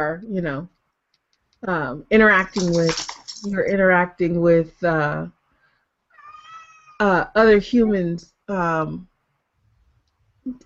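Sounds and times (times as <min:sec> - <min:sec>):
speech: 0:00.0 - 0:00.8, 0:01.6 - 0:05.4, 0:07.0 - 0:09.1, 0:10.4 - 0:10.6
female cat meowing loudly and frantically: 0:06.1 - 0:07.0.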